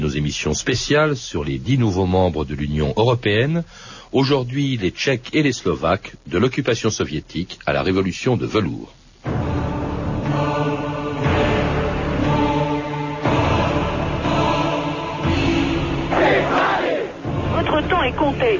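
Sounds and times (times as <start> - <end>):
speech: 0.1 - 9.4
crowd chanting: 9.5 - 18.5
crowd cheering: 16.1 - 17.2.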